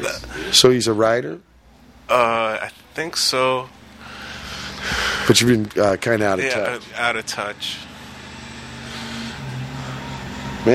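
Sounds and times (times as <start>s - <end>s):
speech: 0.0s - 1.5s, 2.1s - 3.8s, 4.8s - 7.9s
fire truck engines roaring while driving past: 3.8s - 10.7s.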